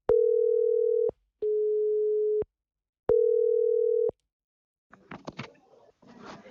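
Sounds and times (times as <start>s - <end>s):
phone line ringing tone on an outgoing call to a mobile phone: 0.1s - 2.4s, 3.1s - 4.1s.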